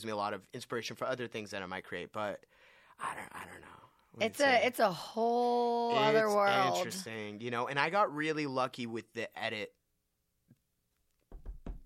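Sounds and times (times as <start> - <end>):
speech: 0.0 - 9.8
firm knocks on wood: 11.3 - 11.8.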